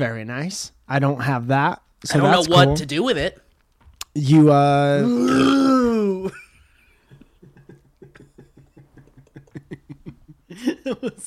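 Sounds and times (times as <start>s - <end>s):
speech: 0.0s - 3.4s, 4.2s - 6.4s, 10.6s - 11.2s
long loud deep burp with buzzing croaky tone: 5.0s - 6.0s
laughter: 6.0s - 11.2s.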